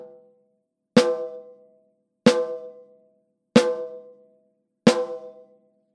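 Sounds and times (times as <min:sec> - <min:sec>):
snare drum hits: 0:01.0 - 0:01.3, 0:02.3 - 0:02.7, 0:04.9 - 0:05.4.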